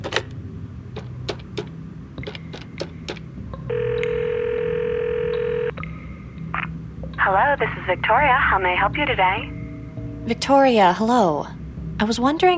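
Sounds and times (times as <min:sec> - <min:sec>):
steady buzzing telephone ring tone: 0:03.7 - 0:05.8
speech: 0:07.3 - 0:09.6, 0:10.3 - 0:12.5.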